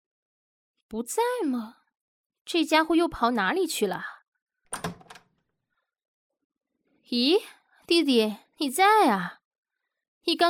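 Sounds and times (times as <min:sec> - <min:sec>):
speech: 0:00.9 - 0:01.8, 0:02.5 - 0:04.1, 0:04.7 - 0:04.9, 0:07.1 - 0:09.4, 0:10.2 - 0:10.4
door opening with clunks and rattles: 0:04.7 - 0:05.3.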